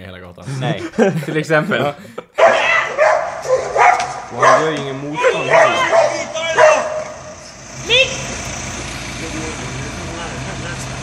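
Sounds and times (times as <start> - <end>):
speech: 0.0 - 2.3, 4.3 - 5.8
laughter: 0.4 - 7.6
dog barking: 2.4 - 7.4.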